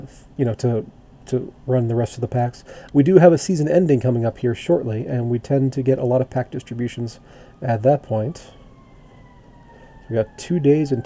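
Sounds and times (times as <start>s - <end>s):
speech: 0.0s - 8.6s, 10.1s - 11.0s
heavy low rumble of traffic: 0.0s - 11.0s
ambulance siren wailing: 4.6s - 11.0s.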